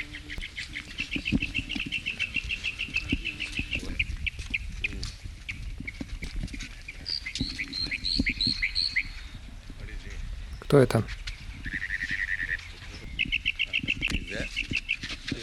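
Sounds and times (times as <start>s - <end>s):
small bird singing: 0.0s - 6.0s, 6.8s - 9.4s, 10.4s - 15.4s
speech: 10.7s - 11.2s.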